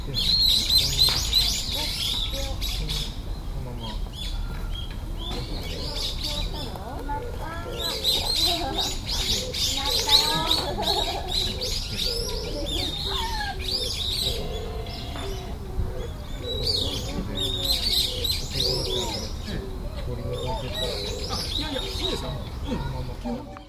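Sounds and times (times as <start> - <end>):
birds chirping and twittering: 0.0 - 23.5
laughter: 8.1 - 9.3, 10.0 - 13.6, 18.6 - 23.5.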